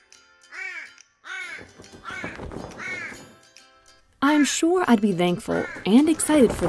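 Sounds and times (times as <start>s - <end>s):
raven cawing: 0.5s - 3.4s, 5.5s - 6.3s
speech: 4.3s - 6.6s.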